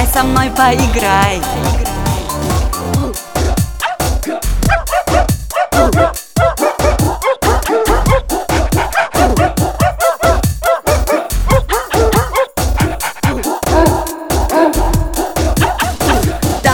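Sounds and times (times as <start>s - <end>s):
speech: 0.1s - 2.5s
dog barking excitedly with yapping barks and yips: 3.4s - 16.5s.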